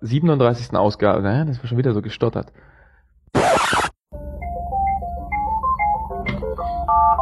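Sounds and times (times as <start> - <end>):
speech: 0.0 - 2.8
telephone ringing with a melodic electronic ringtone: 4.7 - 7.2.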